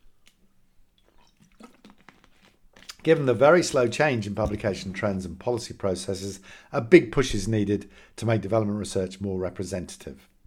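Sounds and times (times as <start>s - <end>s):
person slurping a drink: 1.0s - 5.1s
speech: 3.0s - 10.3s.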